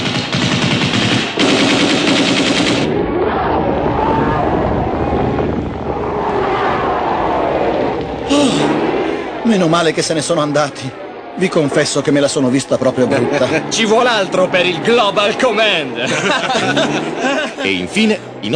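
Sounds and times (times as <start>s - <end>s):
machine-gun burst fired into the air: 0.0s - 3.0s
rumbling din: 0.0s - 18.5s
speech: 9.5s - 18.5s
laughter: 12.7s - 14.5s, 15.3s - 18.2s.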